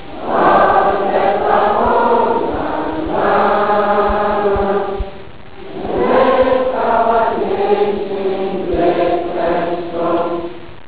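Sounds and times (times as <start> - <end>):
national anthem: 0.0 - 10.8.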